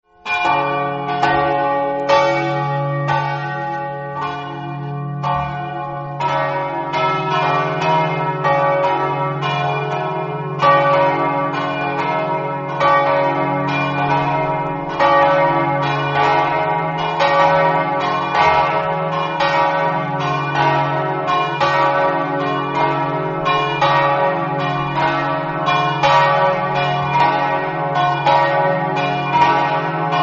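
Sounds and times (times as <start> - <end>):
church bells of San Floriano ringing: 0.0 - 30.2.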